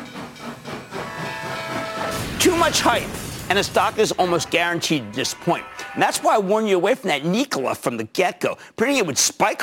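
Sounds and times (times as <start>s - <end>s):
steam train whistle: 0.9s - 2.2s
speech: 2.4s - 9.6s.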